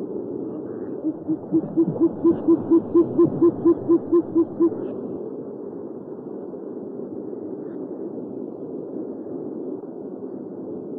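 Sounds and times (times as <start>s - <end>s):
steady background noise: 0.0s - 7.4s
owl hooting: 0.4s - 5.2s.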